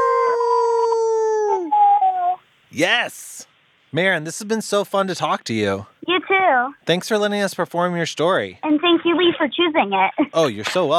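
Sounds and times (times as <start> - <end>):
people howling together in imitation of a wolf pack: 0.0 - 1.8
speech: 2.8 - 10.9.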